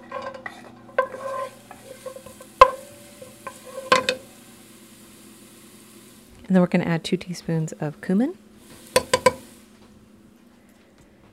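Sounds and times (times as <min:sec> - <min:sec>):
utensil stirring and striking the pan: 0:00.0 - 0:04.2, 0:08.9 - 0:09.5
garlic frying in hot oil in a pan: 0:00.0 - 0:10.5
speech: 0:06.5 - 0:08.4.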